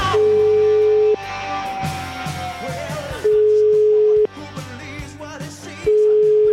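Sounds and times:
low telephone beeps while an outgoing call is being placed: 0:00.2 - 0:01.2, 0:03.3 - 0:04.3, 0:05.9 - 0:06.5.

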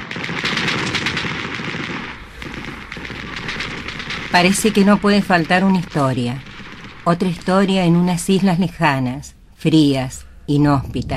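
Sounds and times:
machine-gun fire in battle: 0:00.0 - 0:08.7
speech: 0:04.4 - 0:06.5, 0:07.1 - 0:11.1.

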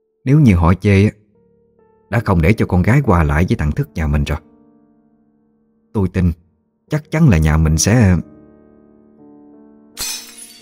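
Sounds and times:
speech: 0:00.2 - 0:01.2, 0:02.1 - 0:04.5, 0:06.0 - 0:08.3
ceramic bowls breaking in a kitchen: 0:10.0 - 0:10.6.

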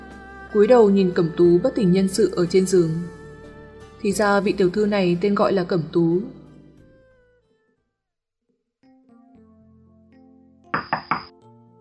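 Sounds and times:
quiet sustained musical backdrop: 0:00.0 - 0:07.9, 0:08.9 - 0:11.7
speech: 0:00.5 - 0:03.2, 0:04.0 - 0:06.4
soft knocks on a room door at night: 0:10.8 - 0:11.3.

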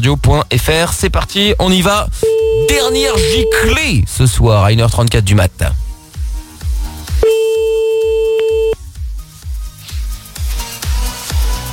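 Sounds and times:
rhythmic music bed with thumping beats: 0:00.0 - 0:03.8, 0:05.6 - 0:11.7
speech: 0:00.0 - 0:05.8
telephone ringing tone while calling someone: 0:02.2 - 0:03.7, 0:07.2 - 0:08.8.

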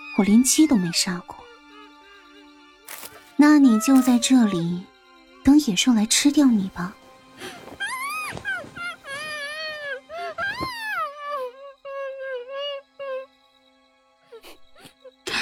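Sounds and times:
speech: 0:00.2 - 0:01.4, 0:03.4 - 0:04.9, 0:05.5 - 0:07.0
person crying: 0:03.6 - 0:04.7.

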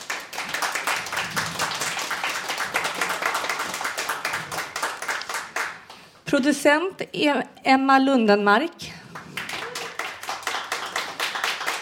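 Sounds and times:
studio audience applause: 0:00.0 - 0:06.1, 0:09.1 - 0:11.8
speech: 0:06.3 - 0:08.9.

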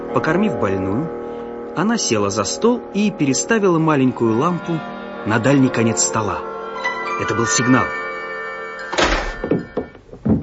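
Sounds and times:
speech: 0:00.1 - 0:06.5, 0:07.2 - 0:08.0
door kicked open with a boot: 0:08.9 - 0:10.4
knocks and rattles: 0:08.9 - 0:10.4.

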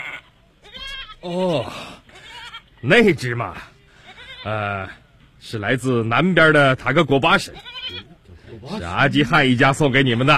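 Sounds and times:
goat bleating: 0:00.0 - 0:01.2, 0:02.1 - 0:02.8, 0:04.0 - 0:05.0, 0:07.4 - 0:08.2
speech: 0:01.2 - 0:02.0, 0:02.8 - 0:03.7, 0:04.4 - 0:10.3.

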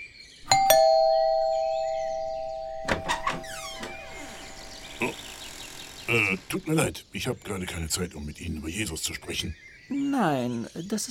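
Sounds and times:
two-tone doorbell chime: 0:00.5 - 0:05.2
speech: 0:06.1 - 0:11.0.

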